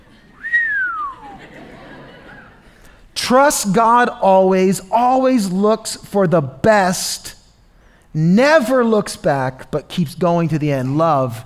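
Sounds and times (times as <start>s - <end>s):
person whistling a short downward-sliding note: 0.4s - 1.4s
laughter: 1.0s - 2.8s
speech: 3.3s - 7.4s, 8.1s - 11.4s.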